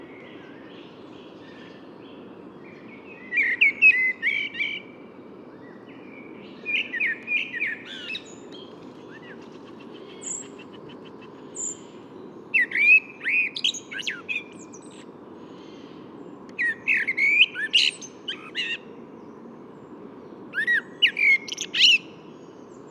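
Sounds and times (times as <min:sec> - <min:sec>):
common blackbird song: 0:00.0 - 0:22.9.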